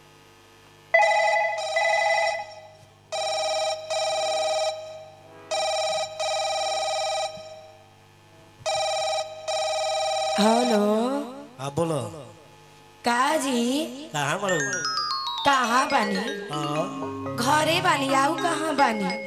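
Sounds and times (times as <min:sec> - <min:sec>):
electronic double-pulse ringback tone on an outgoing telephone call: 0:00.9 - 0:07.8, 0:08.7 - 0:11.1, 0:14.6 - 0:19.2
speech: 0:10.4 - 0:12.2, 0:13.0 - 0:19.2.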